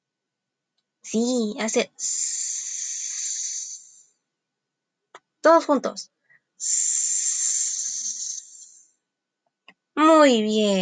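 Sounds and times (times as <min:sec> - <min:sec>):
speech: 0:01.1 - 0:02.4, 0:05.4 - 0:06.9, 0:10.2 - 0:10.8
person imitating a snake's hiss in a guided group exercise: 0:01.9 - 0:04.1, 0:06.6 - 0:08.8.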